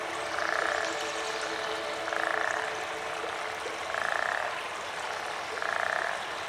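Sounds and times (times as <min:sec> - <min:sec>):
steady hiss of flowing river water: 0:00.0 - 0:06.4
toads on the Nile in Egypt croaking in buzzy trills: 0:00.3 - 0:00.8, 0:02.1 - 0:02.7, 0:03.9 - 0:04.6, 0:05.2 - 0:06.3.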